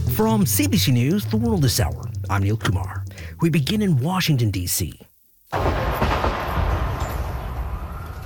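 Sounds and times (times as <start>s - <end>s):
speech: 0.2s - 5.8s
loud gunfire near the White House in Washington D.C.: 5.5s - 8.1s.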